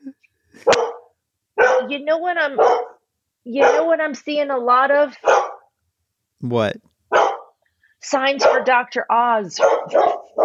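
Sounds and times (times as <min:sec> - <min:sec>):
dog barking: 0:00.6 - 0:04.0, 0:05.2 - 0:05.7, 0:07.1 - 0:07.6, 0:08.4 - 0:08.8, 0:09.6 - 0:10.4
speech: 0:01.9 - 0:05.4, 0:06.4 - 0:06.9, 0:08.0 - 0:10.4.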